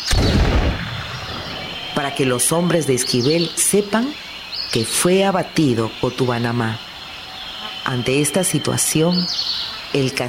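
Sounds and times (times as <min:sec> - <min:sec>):
arquebus warning shot fired into the air: 0:00.0 - 0:02.0
speech: 0:02.0 - 0:06.9, 0:07.9 - 0:10.2.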